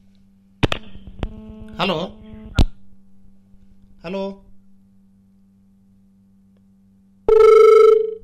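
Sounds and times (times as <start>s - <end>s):
faint hum: 0.0s - 8.2s
speech: 1.8s - 2.2s, 4.0s - 4.4s
telephone ringing with an incoming call, buzzing electronic ring: 7.3s - 8.2s.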